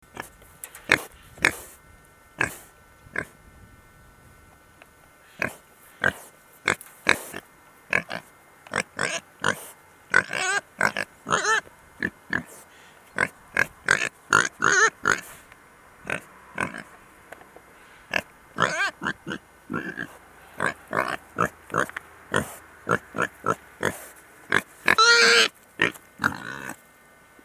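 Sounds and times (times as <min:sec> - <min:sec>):
wild boar: 0:00.1 - 0:01.8, 0:05.2 - 0:15.4, 0:16.0 - 0:17.0, 0:17.9 - 0:26.8.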